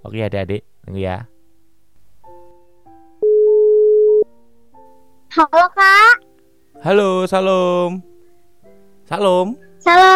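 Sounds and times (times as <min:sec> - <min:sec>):
speech: 0:00.0 - 0:01.3, 0:05.3 - 0:06.2, 0:06.8 - 0:08.1, 0:09.1 - 0:10.1
telephone ringing tone as a call is placed to a quiz participant: 0:03.2 - 0:04.2.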